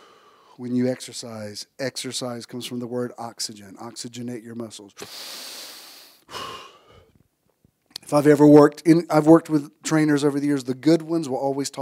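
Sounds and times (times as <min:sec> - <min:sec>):
person taking a deep breath: 0:00.0 - 0:00.6, 0:05.0 - 0:07.2
speech: 0:00.6 - 0:05.6, 0:08.1 - 0:11.8.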